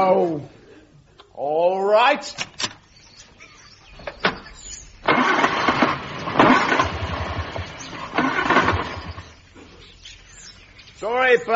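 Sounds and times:
speech: 0.0 - 0.6, 1.4 - 2.6, 11.0 - 11.5
car engine cranking and failing to start: 4.0 - 9.4.

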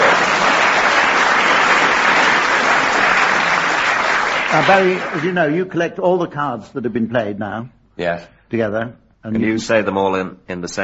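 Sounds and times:
crowd applauding: 0.0 - 5.6
speech: 4.6 - 10.8.

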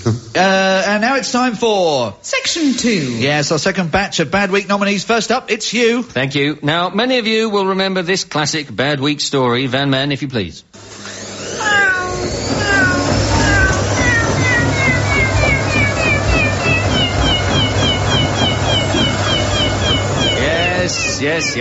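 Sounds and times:
speech: 0.0 - 10.9, 21.2 - 21.5
washing machine on its spin cycle: 10.8 - 21.5
cat meowing and yowling inside a washing machine: 11.5 - 21.5.

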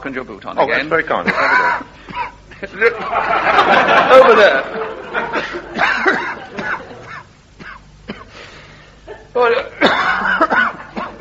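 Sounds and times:
speech: 0.0 - 1.9, 2.6 - 4.8, 9.4 - 10.4
laughter: 1.2 - 7.3
person in a harsh coughing fit: 1.3 - 2.6, 5.4 - 8.4, 9.1 - 11.1
person gasping: 8.2 - 9.0.

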